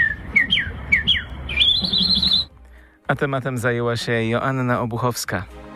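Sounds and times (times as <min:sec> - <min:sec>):
person imitating birdsong with whistled chirps and trills: 0:00.0 - 0:02.6
speech: 0:03.1 - 0:05.6.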